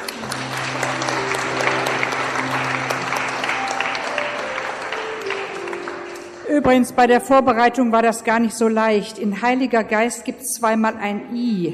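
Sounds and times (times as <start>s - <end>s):
crowd applauding: 0.0s - 6.6s
speech: 6.6s - 11.7s.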